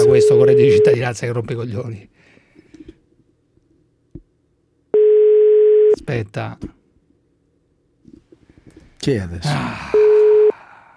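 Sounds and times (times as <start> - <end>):
mid-pitched telephone tone of a phone call reaching an answering machine: 0.0 - 1.0, 5.0 - 6.0, 10.0 - 10.6
speech: 0.4 - 2.4, 6.0 - 6.8, 9.0 - 10.1.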